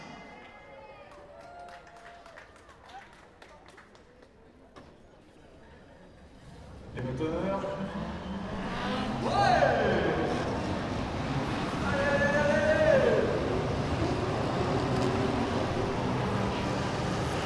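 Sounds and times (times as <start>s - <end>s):
Le Mans style race start: 6.2s - 17.4s.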